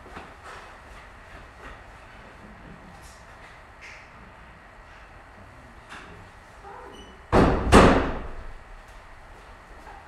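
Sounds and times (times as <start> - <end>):
door pushed shut with a thud: 7.0 - 8.5.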